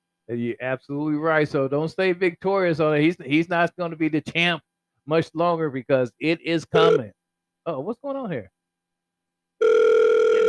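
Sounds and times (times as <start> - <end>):
speech: 0.3 - 8.6
electronic telephone ringing: 6.8 - 7.0, 9.6 - 10.4.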